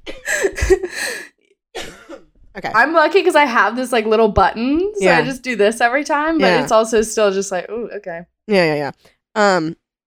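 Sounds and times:
harsh coughing: 0.0 - 2.4
speech: 2.6 - 9.8.

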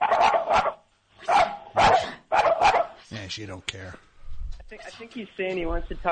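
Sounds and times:
dog barking: 0.0 - 3.1
speech: 3.3 - 4.1, 4.7 - 6.0.

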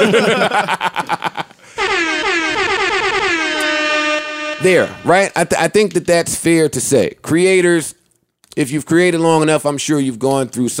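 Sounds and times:
speech: 0.0 - 1.4, 4.6 - 8.0, 8.6 - 10.7
laughter: 0.0 - 1.6
air horn sound effect blasts: 1.8 - 5.3.

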